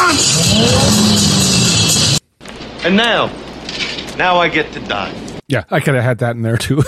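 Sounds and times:
taxi cab engine revving: 0.3 - 2.2
speech: 2.8 - 3.4, 4.2 - 6.8.

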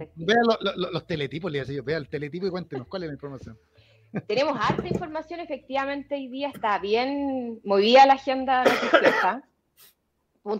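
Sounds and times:
speech: 0.0 - 10.5
faint breath: 3.7 - 4.1
person coughing heartily: 8.6 - 9.4.

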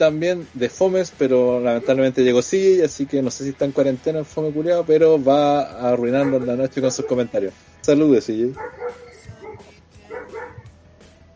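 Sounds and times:
speech: 0.0 - 9.7
dog barking in the background: 1.7 - 2.1, 5.9 - 7.4, 8.6 - 10.7.

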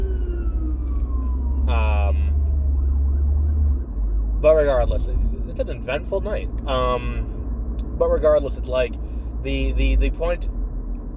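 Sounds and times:
ambulance siren passing by: 0.0 - 5.4
steady low traffic rumble: 0.0 - 11.1
speech: 4.5 - 7.4, 8.0 - 10.6.

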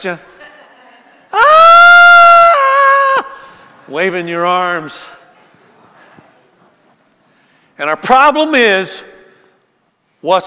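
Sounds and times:
speech: 0.0 - 0.3, 3.9 - 5.2, 7.8 - 9.2, 10.2 - 10.4
person screaming: 1.3 - 3.5.

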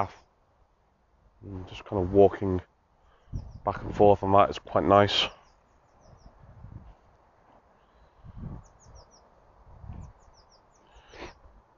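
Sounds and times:
speech: 0.0 - 0.2, 1.4 - 2.7, 3.3 - 5.4
low gusts of wind: 0.0 - 11.7
faint birds chirping in a field: 3.0 - 6.6, 7.6 - 11.6.

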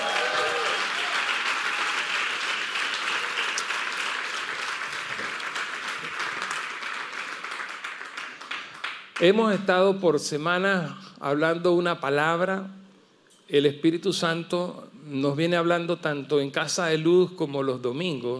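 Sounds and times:
voices cheering: 0.0 - 2.2
church audience applauding: 0.0 - 9.4
speech: 9.2 - 12.8, 13.5 - 18.3.

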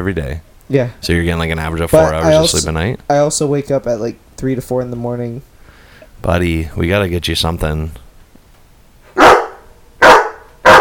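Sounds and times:
speech: 0.0 - 5.5, 6.2 - 8.0
dog barking: 9.2 - 10.7.

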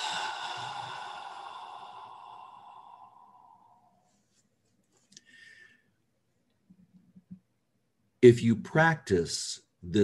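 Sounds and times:
long slow breath exhaled through the mouth in a breathing exercise: 0.0 - 4.1
speech: 8.2 - 10.0.

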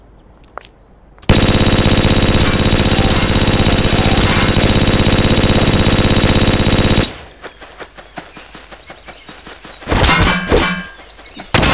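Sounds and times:
rapid video game weapon fire: 1.3 - 7.3
metallic clanks and pings: 10.0 - 11.0.

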